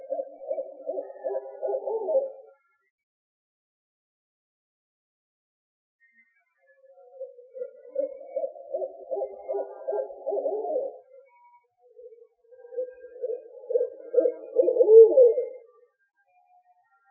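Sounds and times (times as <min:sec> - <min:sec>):
owl hooting: 0:00.0 - 0:02.4, 0:07.1 - 0:11.2, 0:12.0 - 0:15.7.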